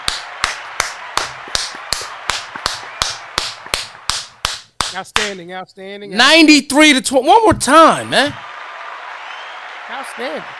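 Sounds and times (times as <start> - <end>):
people clapping: 0.0 - 5.4, 7.7 - 10.5
speech: 4.9 - 8.5, 10.0 - 10.5.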